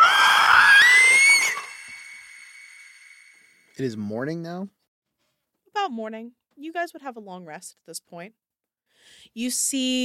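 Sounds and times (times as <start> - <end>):
eerie high-pitched creature shriek: 0.0 - 3.6
speech: 3.8 - 4.8, 5.8 - 8.4, 9.0 - 10.0.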